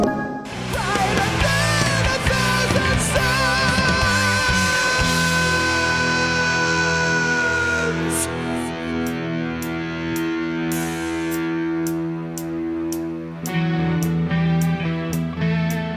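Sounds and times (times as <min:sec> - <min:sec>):
drums with sharp drum hits: 0:00.0 - 0:15.9
loud distorted guitars: 0:00.0 - 0:15.9
rock singer holding a long high note that nearly cracks: 0:00.4 - 0:12.4.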